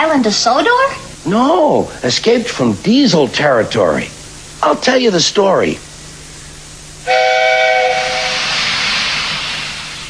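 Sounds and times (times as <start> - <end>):
speech: 0.1 - 5.9, 7.0 - 7.5
steam locomotive whistle blast: 7.0 - 10.0.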